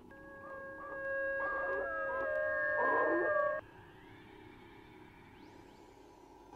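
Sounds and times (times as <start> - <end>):
two dogs howling and barking outside at night: 0.6 - 3.6.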